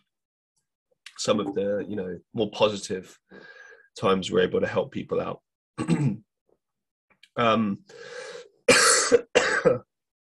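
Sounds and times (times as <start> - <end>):
speech: 1.2 - 6.3, 7.4 - 8.4, 9.1 - 9.9
person coughing in a hacking fit: 5.8 - 6.2, 8.7 - 9.9.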